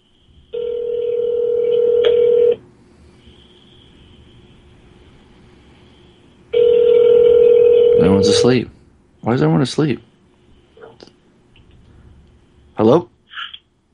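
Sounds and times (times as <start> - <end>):
ringback tone of an outgoing telephone call: 0.6 - 2.6, 6.5 - 8.5
speech: 8.3 - 8.7, 9.3 - 10.1, 12.8 - 13.1.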